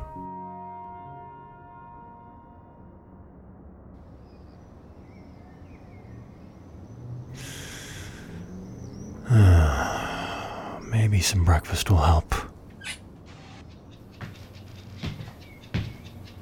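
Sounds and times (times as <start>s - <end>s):
slow deep breathing in and out: 7.3s - 10.9s
speech: 11.2s - 12.4s.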